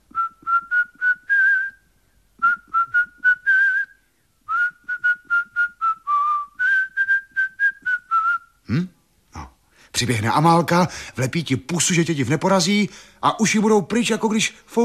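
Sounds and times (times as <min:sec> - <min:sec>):
person whistling a signal in rhythmic repeated notes: 0:00.1 - 0:01.8, 0:02.4 - 0:08.6
speech: 0:10.0 - 0:14.8.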